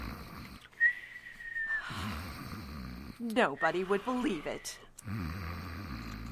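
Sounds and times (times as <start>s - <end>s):
man snoring in his sleep: 0.0s - 0.7s, 1.9s - 3.2s, 3.9s - 6.2s
speech: 3.2s - 5.4s.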